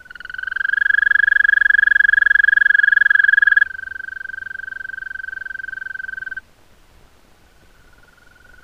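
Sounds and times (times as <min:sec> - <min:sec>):
European green toad Bufo viridis trilling: 0:00.0 - 0:06.4.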